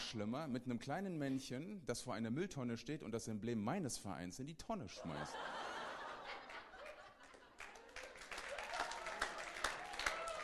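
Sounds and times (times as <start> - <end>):
speech: 0.1 - 5.7
scattered laughter and chuckles: 5.0 - 8.2
audience clapping: 6.5 - 10.4.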